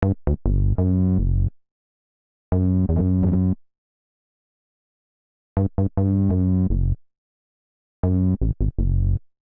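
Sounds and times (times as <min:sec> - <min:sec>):
F sharp minor bassline at 87 bpm: 0:00.0 - 0:01.6, 0:02.5 - 0:03.6, 0:05.6 - 0:07.0, 0:08.0 - 0:09.3.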